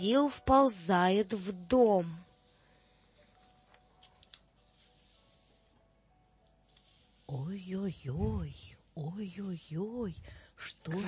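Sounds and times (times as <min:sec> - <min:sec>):
speech: 0:00.0 - 0:02.2, 0:07.3 - 0:11.0
children's book pages turning: 0:03.2 - 0:05.7, 0:06.3 - 0:07.6.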